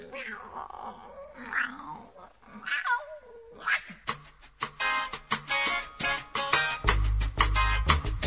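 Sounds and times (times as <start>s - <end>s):
cat meowing in drawn-out wavering cries: 0.0s - 4.0s
sharp rhythmic percussive hits: 4.1s - 8.2s.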